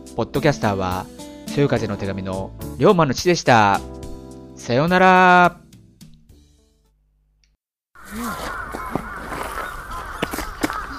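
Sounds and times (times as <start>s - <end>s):
speech: 0.1s - 3.9s, 4.6s - 5.6s
great number of crows cawing: 8.0s - 10.9s.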